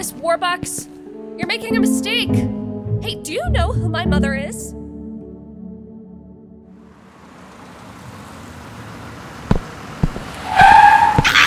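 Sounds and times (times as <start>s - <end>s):
speech: 0.0s - 4.9s
local bus tires squealing while skidding to a stop: 7.1s - 11.4s
sharp knocks: 9.5s - 10.3s.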